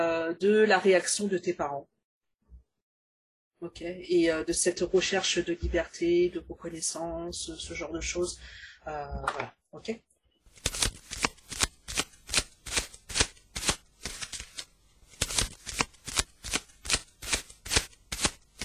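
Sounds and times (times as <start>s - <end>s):
speech: 0.0s - 2.0s, 3.6s - 10.7s
playing cards being shuffled: 10.5s - 18.6s.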